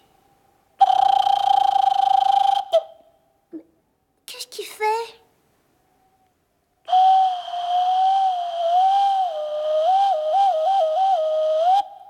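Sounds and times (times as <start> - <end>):
cuckoo attempting its call with a long wavering whistle: 0.8 - 3.2, 6.9 - 12.0.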